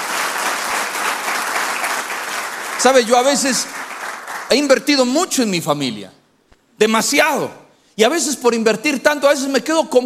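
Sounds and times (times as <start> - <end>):
church congregation applause: 0.0 - 4.8
speech: 2.8 - 3.8, 4.5 - 6.2, 6.8 - 10.0.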